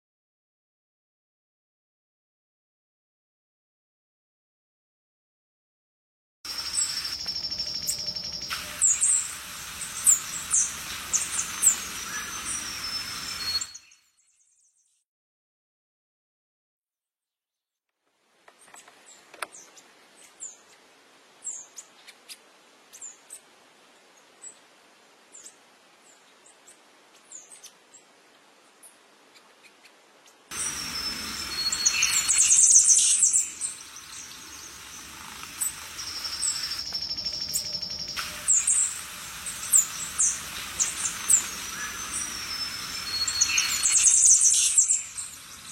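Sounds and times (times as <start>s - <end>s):
saíra-lagarta singing: 6.5s - 15.0s, 30.5s - 45.7s.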